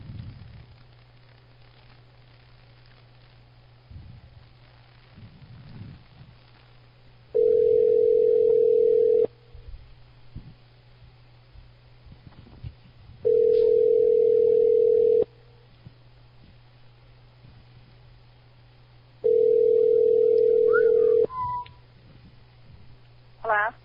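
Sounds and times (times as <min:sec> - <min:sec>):
low constant hum: 0:00.0 - 0:23.8
ringback tone on a telephone line after dialing: 0:07.4 - 0:09.3, 0:13.2 - 0:15.3, 0:19.2 - 0:21.6
people talking: 0:23.4 - 0:23.8.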